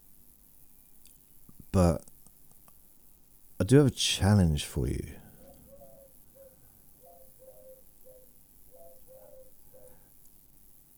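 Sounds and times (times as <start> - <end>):
steady hiss: 0.0 - 10.9
speech: 1.8 - 2.1, 3.7 - 5.2
soft low pigeon cooing: 4.9 - 10.1.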